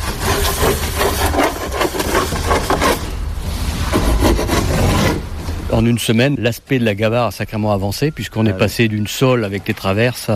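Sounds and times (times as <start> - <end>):
hand saw cutting through a large wooden boat plank: 0.0 - 3.2, 3.8 - 5.3
speech: 5.7 - 10.3.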